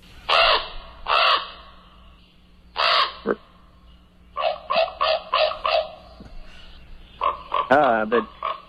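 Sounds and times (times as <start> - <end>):
northern raven croaking: 0.3 - 3.7, 4.3 - 6.3, 7.1 - 8.6.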